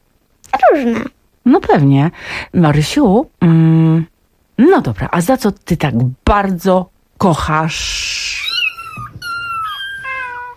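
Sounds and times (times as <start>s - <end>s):
speech: 0.7s - 8.1s
cat meowing: 8.4s - 10.5s.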